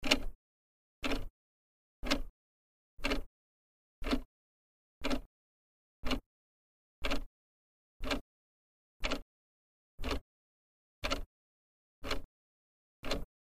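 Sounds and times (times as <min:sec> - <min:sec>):
clock hand ticking: 0:00.0 - 0:00.4, 0:01.0 - 0:01.3, 0:02.0 - 0:02.3, 0:03.0 - 0:03.3, 0:04.0 - 0:04.3, 0:05.0 - 0:05.3, 0:06.0 - 0:06.2, 0:07.0 - 0:07.3, 0:08.0 - 0:08.2, 0:09.0 - 0:09.3, 0:10.0 - 0:10.2, 0:11.0 - 0:11.3, 0:12.0 - 0:12.3, 0:13.0 - 0:13.3.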